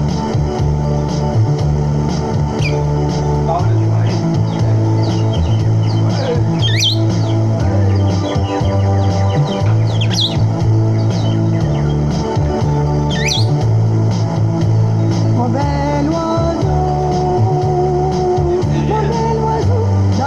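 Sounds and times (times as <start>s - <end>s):
steady low tonal humming background: 0.0s - 20.1s
small pet bird chirping: 2.6s - 2.9s, 4.1s - 13.7s.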